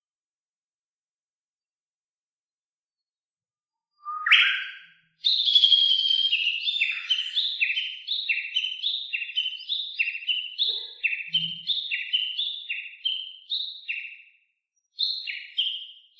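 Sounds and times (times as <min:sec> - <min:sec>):
Japanese bush warbler valley-crossing call: 0:04.0 - 0:14.1.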